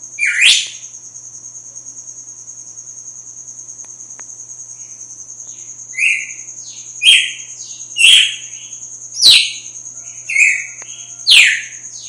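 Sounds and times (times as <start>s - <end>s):
female red-cowled cardinal chirping: 0.2s - 0.8s, 5.5s - 12.0s.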